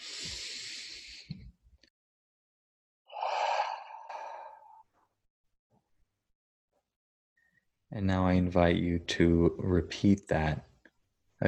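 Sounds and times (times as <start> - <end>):
slow deep breathing during a guided meditation: 0.0 - 1.5, 3.1 - 5.1
speech: 7.9 - 10.7.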